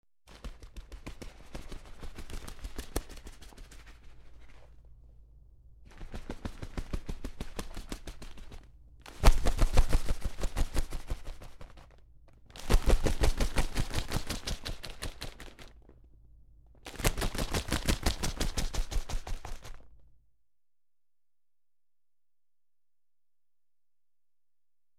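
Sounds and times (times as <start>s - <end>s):
bird flapping wings: 0.3s - 4.8s, 5.8s - 15.9s, 16.8s - 19.9s.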